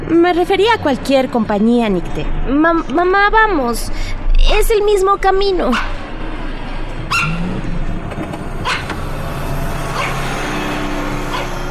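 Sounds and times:
steady engine rumble: 0.0s - 11.6s
speech: 0.1s - 6.0s
dog barking: 5.7s - 6.0s, 7.1s - 7.5s, 8.6s - 8.9s.

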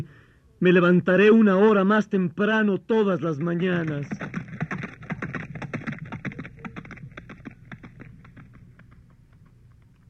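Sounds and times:
speech: 0.0s - 4.4s
horse trotting heavily: 3.2s - 10.0s.

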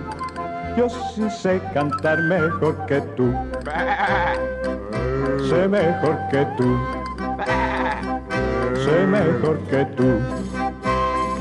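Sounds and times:
steady instrumental music: 0.0s - 11.3s
speech: 0.8s - 7.0s, 8.9s - 10.4s
lamb bleating: 3.6s - 5.5s, 7.4s - 9.5s.

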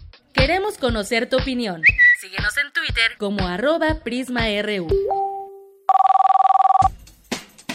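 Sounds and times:
speech: 0.5s - 5.3s
telephone bell ringing: 5.9s - 6.9s.

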